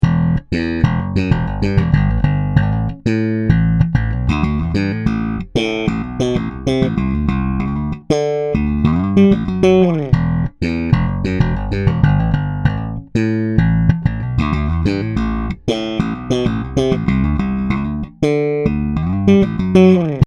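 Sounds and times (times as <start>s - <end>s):
Music Man Caprice bass guitar played slap with Hinterer pickup: 0.0s - 20.2s.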